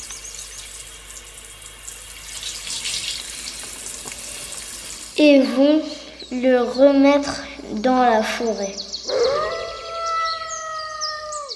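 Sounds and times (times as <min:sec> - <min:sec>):
shower water running: 0:00.0 - 0:05.7
speech: 0:05.2 - 0:09.2.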